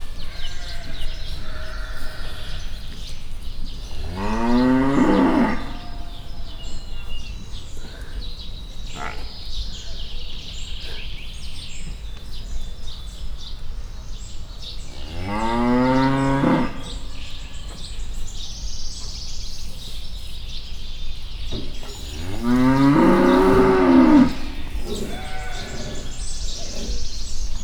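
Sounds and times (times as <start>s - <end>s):
Hungarian Grey cattle mooing in a zoo: 4.0s - 6.2s, 15.0s - 17.1s, 21.8s - 27.1s.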